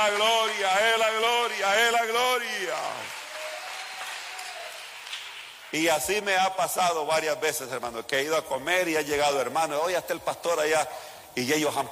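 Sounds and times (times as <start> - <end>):
applause from a congregation at a church service: 0.0 - 5.8
speech: 5.7 - 11.9.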